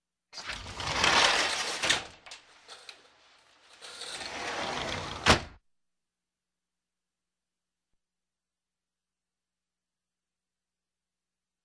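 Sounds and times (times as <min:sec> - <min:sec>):
sliding door on rollers: 0:00.4 - 0:05.5.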